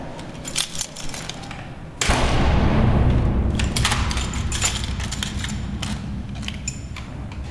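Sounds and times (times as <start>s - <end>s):
keys jangling and rattling: 0.0s - 1.6s, 3.8s - 7.4s
solid door thud: 2.0s - 7.4s
steady machinery-like rumble: 2.0s - 7.4s.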